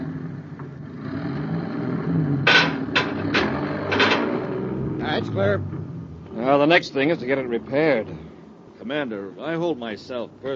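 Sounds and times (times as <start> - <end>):
heavy truck engine rumbling while pulling a beam: 0.0 - 10.5
short bright bursts of hissing or clanking: 2.5 - 4.6
speech: 5.3 - 5.8, 6.4 - 10.5.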